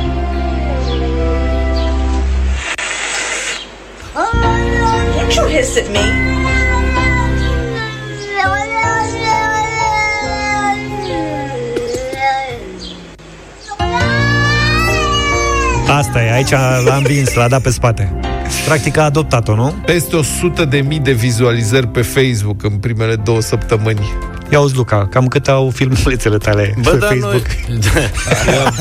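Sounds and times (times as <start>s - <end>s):
steady noise: 0.0s - 28.7s
speech: 5.7s - 6.4s, 15.9s - 28.7s
upset cat meowing plaintively: 11.2s - 17.0s
laughter: 16.4s - 18.0s, 27.2s - 28.7s.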